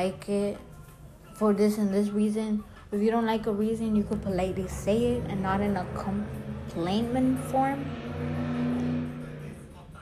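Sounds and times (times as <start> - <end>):
speech: 0.0 - 0.7, 1.4 - 8.4
car engine roaring outside: 3.9 - 10.0.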